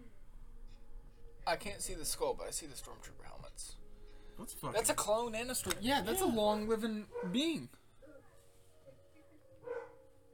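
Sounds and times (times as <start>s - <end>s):
speech: 1.5s - 3.8s, 4.4s - 7.8s
dog barking: 7.1s - 7.4s, 9.6s - 10.1s.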